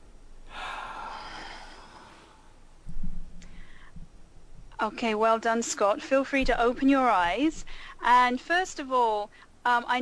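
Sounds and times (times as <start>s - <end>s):
deep comfortable breath during an emotional freedom technique session: 0.5s - 2.7s, 3.4s - 4.1s, 7.7s - 8.0s
speech: 4.8s - 10.0s.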